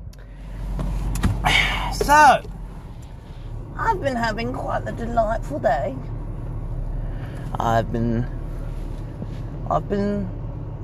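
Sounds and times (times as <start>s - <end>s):
car engine and road hum inside a car: 0.0s - 10.8s
soft thumps inside a car: 0.7s - 2.6s
speech: 2.1s - 2.5s, 3.8s - 6.1s, 7.5s - 8.4s, 9.7s - 10.4s.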